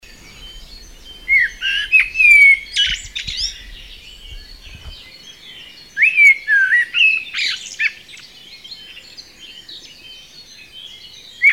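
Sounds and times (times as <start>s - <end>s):
common blackbird Turdus merula singing: 0.0s - 11.5s
low rumble: 0.1s - 5.1s.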